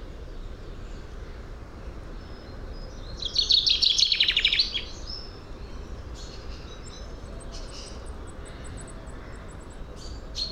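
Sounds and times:
common chaffinch singing Fringilla coelebs: 2.3 - 10.5.

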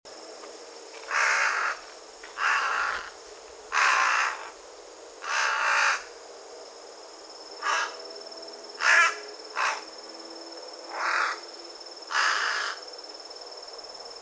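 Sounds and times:
Carrion crow Corvus corone giving harsh hoarse caws: 1.1 - 1.8, 2.4 - 4.6, 5.2 - 6.1, 7.6 - 8.0, 8.8 - 9.9, 10.9 - 11.4, 12.1 - 12.8.

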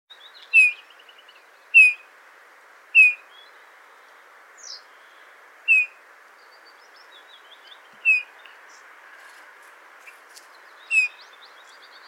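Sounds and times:
Eurasian bullfinch Pyrrhula pyrrhula calling: 0.5 - 0.8, 1.7 - 2.1, 3.0 - 3.3, 5.7 - 6.0, 8.0 - 8.5, 10.9 - 11.2.

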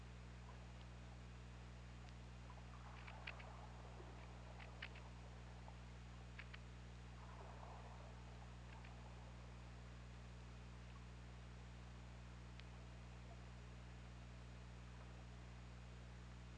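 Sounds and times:
steady low underwater hum and hiss: 0.0 - 16.5
killer whale clicks recorded by hydrophone: 2.0 - 9.4.

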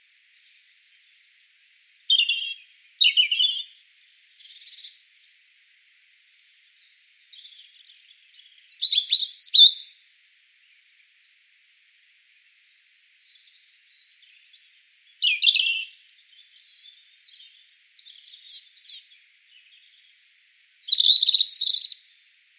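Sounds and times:
European robin Erithacus rubecula singing: 1.8 - 5.4, 6.6 - 10.1, 12.6 - 22.0.

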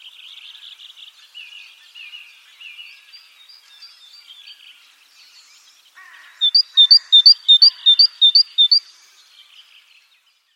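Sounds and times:
great tit Parus major song: 6.0 - 9.1.

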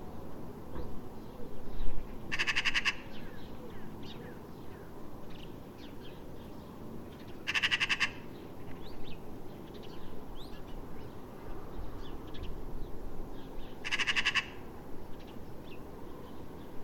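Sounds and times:
low rumbling background noise: 0.0 - 16.8
Eurasian magpie Pica pica giving harsh, rapid rattling chatters: 7.5 - 8.2, 13.8 - 14.5.

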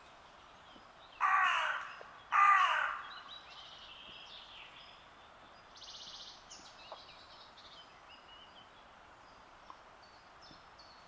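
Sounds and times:
carrion crow Corvus corone cawing: 1.2 - 3.2.

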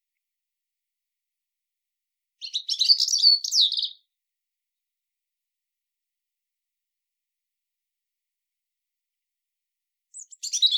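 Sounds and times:
European robin Erithacus rubecula singing: 2.4 - 4.1, 10.1 - 10.7.

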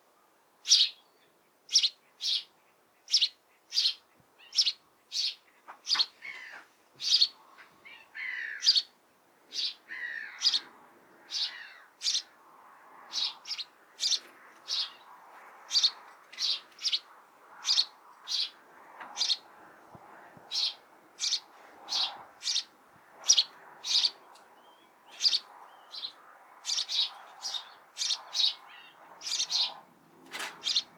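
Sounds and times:
house sparrow chirping: 0.6 - 2.5, 3.1 - 6.4, 7.0 - 8.9, 9.5 - 10.7, 11.3 - 12.3, 13.1 - 15.1, 15.7 - 18.6, 19.2 - 19.4, 20.5 - 29.8, 30.6 - 30.9.

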